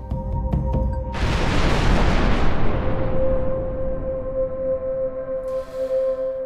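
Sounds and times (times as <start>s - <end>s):
huge explosion of a stadium-sized solid iron asteroid impact: 1.2s - 5.5s
low humming: 1.2s - 6.4s.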